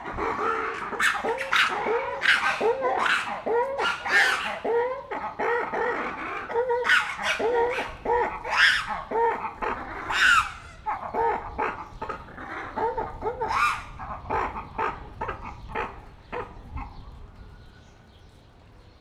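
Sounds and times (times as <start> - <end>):
ruffed lemurs quarreling with each other in Debrecen zoo: 0.0 - 17.0.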